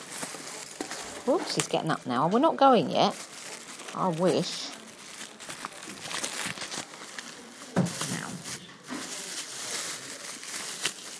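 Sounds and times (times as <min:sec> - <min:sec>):
bag rustling while being handled: 0:00.0 - 0:11.1
speech: 0:01.3 - 0:03.3, 0:04.0 - 0:04.8.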